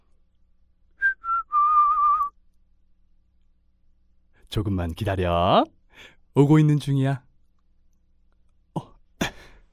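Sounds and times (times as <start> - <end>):
man whistling under a tree: 1.0 - 2.4
speech: 4.5 - 7.3.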